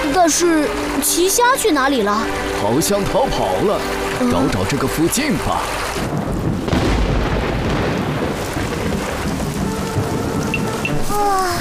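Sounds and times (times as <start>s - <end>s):
heavy rain in a thunderstorm: 0.0s - 11.5s
speech: 0.2s - 6.5s
deep rumble of thunder: 3.2s - 11.5s.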